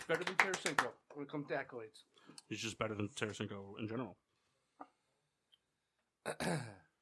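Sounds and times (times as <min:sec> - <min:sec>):
speech: 0:00.1 - 0:04.3, 0:06.3 - 0:06.8
loud raspy throat clearing into the microphone: 0:06.3 - 0:07.0.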